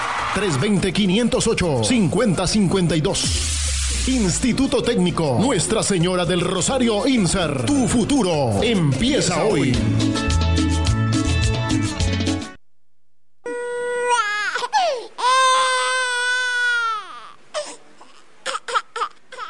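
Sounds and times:
speech: 0.4s - 10.3s
music: 3.2s - 12.6s
baby girl crying: 13.5s - 19.4s.

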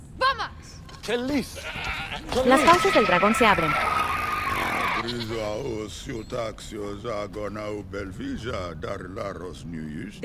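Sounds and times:
speech: 1.0s - 4.1s, 5.0s - 10.2s
goat bleating: 1.4s - 5.5s.

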